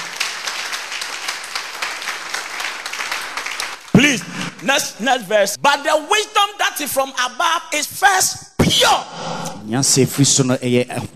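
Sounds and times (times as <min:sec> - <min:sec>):
audience clapping: 0:00.0 - 0:05.0
speech: 0:04.6 - 0:11.1.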